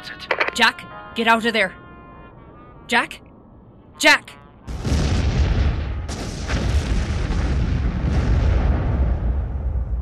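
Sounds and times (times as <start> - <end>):
speech: 0.1 - 1.8, 2.9 - 3.3, 4.0 - 4.4
boat exploding: 4.7 - 10.0.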